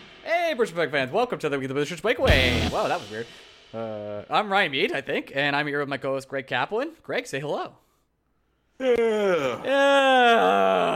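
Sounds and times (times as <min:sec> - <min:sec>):
speech: 0:00.2 - 0:07.8, 0:08.8 - 0:10.9
person yawning: 0:08.8 - 0:10.9.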